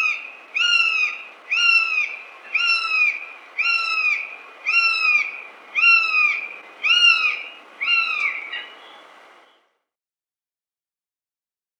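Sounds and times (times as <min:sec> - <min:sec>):
Northern goshawk giving drawn-out downslurred notes: 0:00.0 - 0:08.9.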